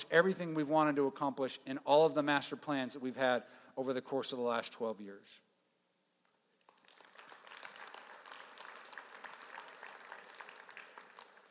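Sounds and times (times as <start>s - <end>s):
speech: 0.1s - 5.4s
audience applause: 6.7s - 11.4s.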